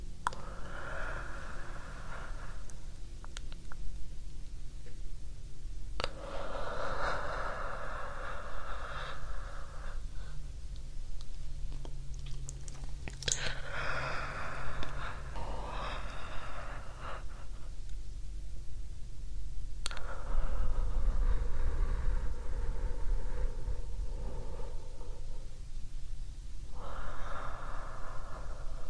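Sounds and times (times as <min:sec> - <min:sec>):
slow deep breathing: 0:00.0 - 0:03.5, 0:06.0 - 0:10.7, 0:11.8 - 0:18.0, 0:19.8 - 0:26.0, 0:26.6 - 0:28.8
steady low rumble: 0:00.3 - 0:27.1.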